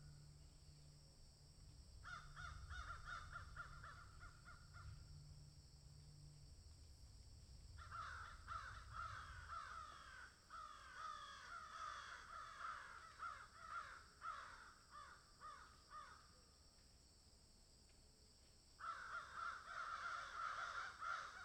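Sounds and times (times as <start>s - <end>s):
crow giving hoarse downslurred caws: 2.0s - 5.1s, 7.8s - 16.3s, 18.8s - 21.4s.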